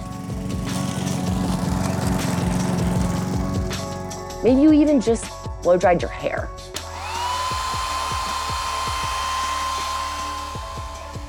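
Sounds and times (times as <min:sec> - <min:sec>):
lawn mower engine running: 0:00.0 - 0:04.4, 0:06.8 - 0:11.2
speech: 0:04.4 - 0:06.6.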